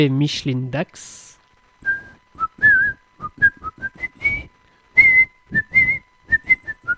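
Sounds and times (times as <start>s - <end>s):
speech: 0.0s - 1.3s
person whistling a quick bouncy tune: 1.8s - 6.9s.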